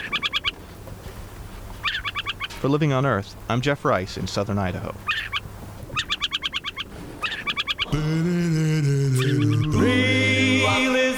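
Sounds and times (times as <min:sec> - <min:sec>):
adult owl calling from fence post: 0:00.0 - 0:02.7, 0:04.7 - 0:08.2, 0:09.0 - 0:10.0
speech: 0:02.6 - 0:05.3, 0:07.9 - 0:09.7.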